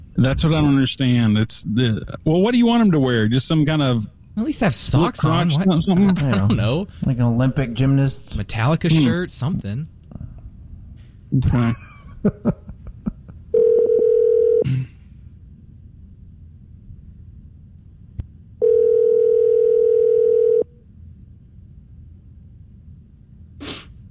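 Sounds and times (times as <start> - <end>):
speech: 0.2 - 10.0, 11.3 - 12.7
laughter: 5.4 - 6.8, 11.4 - 13.4
ringback tone of an outgoing telephone call: 13.6 - 14.6, 18.6 - 20.7.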